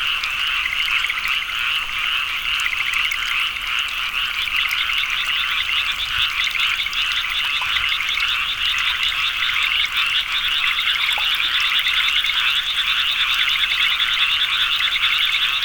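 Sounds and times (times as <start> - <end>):
frog chorus of overlapping rattling croaks: 0.0 - 15.6.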